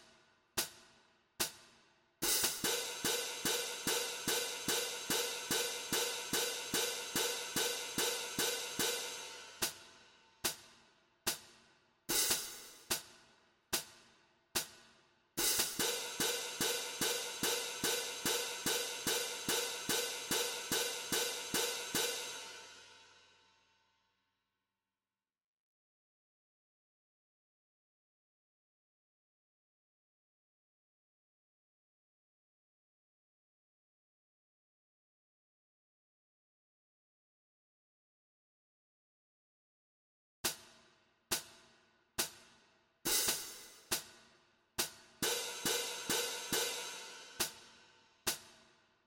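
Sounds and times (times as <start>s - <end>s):
cymbals in a jig rhythm: 0.6s - 13.2s, 13.8s - 23.2s, 43.1s - 48.6s.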